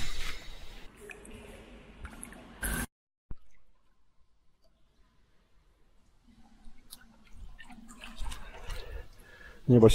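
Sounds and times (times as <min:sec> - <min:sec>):
water dripping and splashing in a small enclosed sauna: 0:00.9 - 0:09.7
speech: 0:09.7 - 0:09.9.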